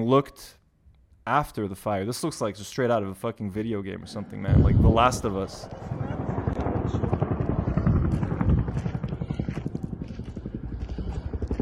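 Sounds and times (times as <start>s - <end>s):
speech: 0.0s - 0.6s, 1.3s - 6.0s, 6.9s - 7.2s
helicopters droning with rotor chop: 3.9s - 11.6s.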